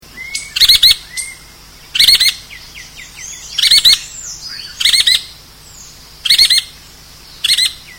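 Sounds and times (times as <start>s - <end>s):
Yellow-fronted Woodpecker Melanerpes flavifrons calling: 0.0s - 7.9s.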